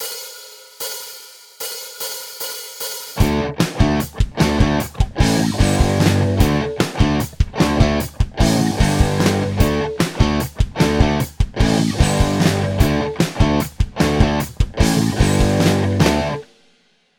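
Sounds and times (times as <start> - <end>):
guitar power chord: 3.2 - 16.4.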